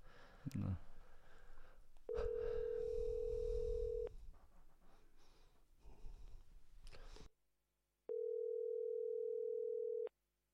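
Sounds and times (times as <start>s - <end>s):
person breathing: 0.0s - 7.3s
speech: 0.4s - 0.9s
telephone ringback tone of an outgoing call: 2.1s - 4.1s, 8.1s - 10.1s.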